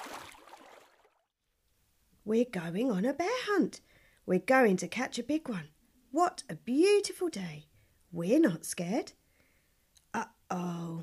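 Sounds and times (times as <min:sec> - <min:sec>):
water splashing and swishing: 0:00.0 - 0:01.4
speech: 0:02.3 - 0:09.2, 0:10.1 - 0:11.0.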